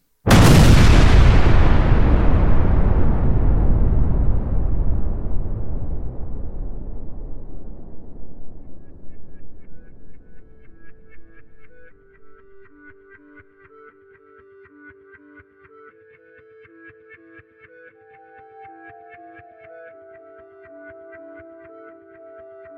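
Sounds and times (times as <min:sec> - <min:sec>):
explosion rolling into a long deep rumble: 0:00.3 - 0:11.9.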